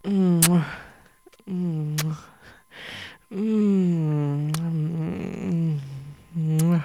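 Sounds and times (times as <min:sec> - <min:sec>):
kissing: 0:00.0 - 0:02.3, 0:04.2 - 0:06.8
woman moaning: 0:00.0 - 0:02.4, 0:03.3 - 0:06.8.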